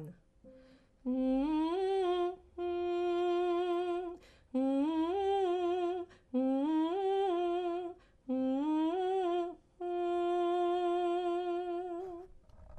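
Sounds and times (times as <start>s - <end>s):
soprano singing: 1.0s - 12.4s.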